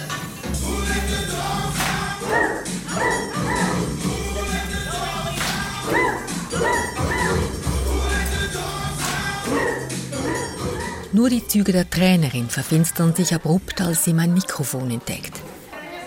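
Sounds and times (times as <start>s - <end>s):
clanging music from huge loudspeakers: 0.0s - 11.7s
people barking in a large hall: 1.2s - 11.2s
speech: 11.2s - 15.5s.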